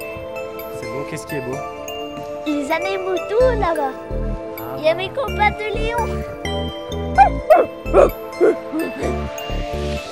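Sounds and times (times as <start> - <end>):
speech: 1.0 - 4.2, 4.8 - 6.4, 7.2 - 10.0
dog barking: 7.2 - 9.3.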